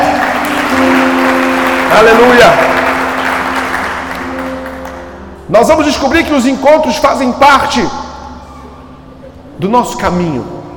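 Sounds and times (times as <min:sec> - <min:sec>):
crowd applauding in a large room: 0:00.0 - 0:05.3
speech: 0:01.9 - 0:02.7, 0:05.5 - 0:08.0, 0:09.6 - 0:10.6.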